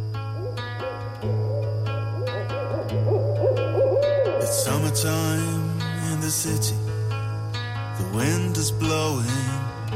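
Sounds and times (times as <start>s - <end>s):
wavering higher calls: 0.2s - 6.1s
owl hooting: 0.3s - 5.6s
steady layered low drone: 0.3s - 6.0s
speech: 4.6s - 6.9s, 8.1s - 9.7s.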